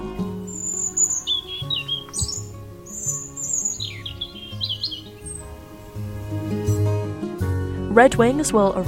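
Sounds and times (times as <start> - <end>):
European robin singing territorial song: 0.0 - 7.0
speech: 8.0 - 8.8.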